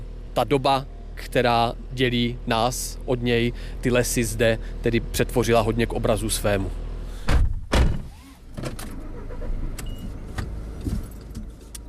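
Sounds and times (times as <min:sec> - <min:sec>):
steady low vehicle rumble: 0:00.0 - 0:11.8
speech: 0:00.4 - 0:06.8
heavy thuds of car doors shutting: 0:07.2 - 0:11.8.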